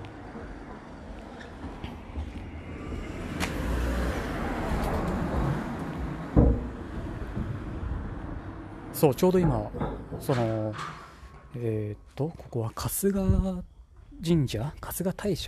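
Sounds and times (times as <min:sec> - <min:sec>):
car approaching and passing by: 0:00.0 - 0:09.0
outdoor ambience: 0:00.0 - 0:15.4
speech: 0:09.0 - 0:11.0, 0:11.6 - 0:15.4.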